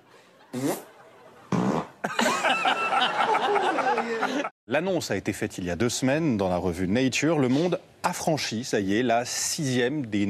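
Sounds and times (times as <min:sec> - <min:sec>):
laughter and giggling voices: 0:00.0 - 0:04.5
fart noises: 0:00.5 - 0:00.9, 0:01.5 - 0:02.0
speech: 0:04.1 - 0:10.2.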